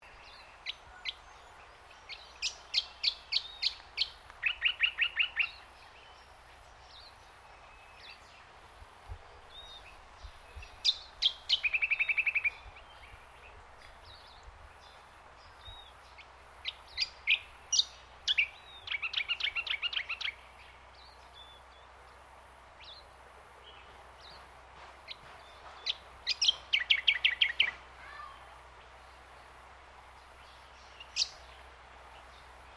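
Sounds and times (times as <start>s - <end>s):
birds in botanic gardens in Yandina Queensland: 0.0s - 32.7s.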